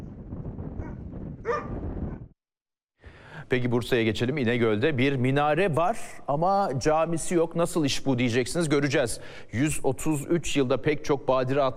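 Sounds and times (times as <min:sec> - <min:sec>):
Kangal dogs barking and whimpering: 0:00.8 - 0:01.7
speech: 0:03.5 - 0:11.7.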